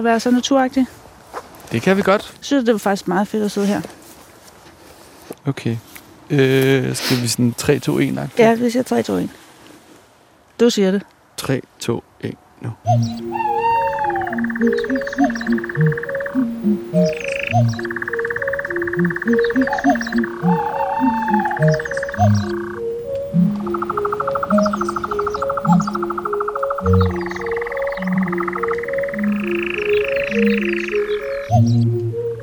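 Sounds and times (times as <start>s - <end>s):
speech: 0.0s - 1.0s, 1.7s - 4.0s, 5.5s - 9.4s, 10.6s - 13.5s, 14.6s - 18.0s, 19.0s - 22.7s, 23.3s - 23.9s
repeating low croaking pulses: 12.8s - 32.4s
sampled songs of endangered bird species: 12.8s - 32.4s
rhythmic electronic album track with sustained tonal chords and steady beat: 12.9s - 32.4s.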